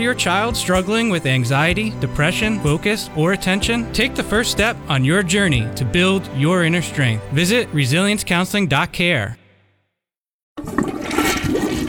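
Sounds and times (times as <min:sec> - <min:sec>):
speech: 0:00.0 - 0:09.4
toilet flushing: 0:10.6 - 0:11.8.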